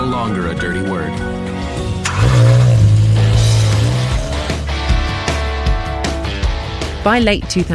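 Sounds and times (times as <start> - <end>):
speech: 0.1 - 1.4, 7.0 - 7.7
rented car engine revving on a freeway with emissions testing setup: 1.7 - 6.4.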